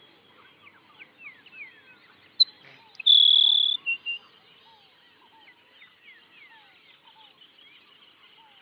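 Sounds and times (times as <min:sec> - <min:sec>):
Grassland sparrow Ammodramus humeralis song with insect-like buzz: 0:00.0 - 0:08.5
other birds chirping faintly: 0:00.0 - 0:08.5.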